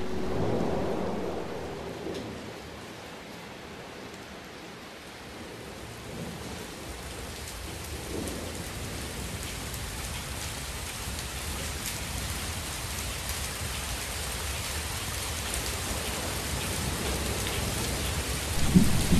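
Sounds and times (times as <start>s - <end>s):
low rolling thunder: 0.0s - 2.6s, 18.5s - 19.1s
heavy rain pouring down: 0.0s - 19.1s.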